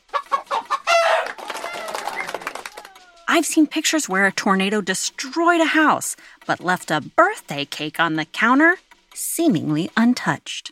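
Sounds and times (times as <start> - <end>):
several chickens clucking and squawking: 0.0 - 7.2
speech: 3.3 - 10.7.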